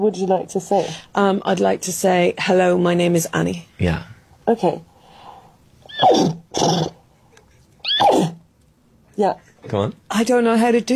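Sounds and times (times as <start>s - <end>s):
speech: 0.0s - 4.9s, 6.0s - 7.0s, 9.2s - 10.9s
child imitating a horse neighing: 5.9s - 7.0s, 7.8s - 8.4s.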